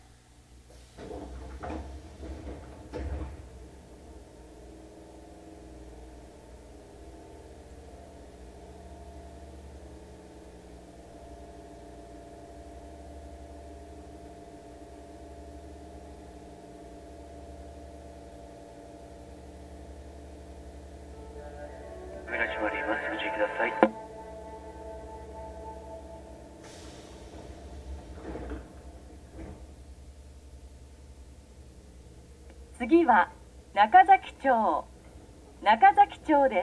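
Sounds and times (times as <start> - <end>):
steady low electrical hum of stationary subway car: 0.0 - 36.6
right-side doors of a subway train opening at Tenjinbashisuji 6-chome station: 0.6 - 8.3, 20.6 - 32.3
speech: 32.9 - 34.9, 35.6 - 36.6.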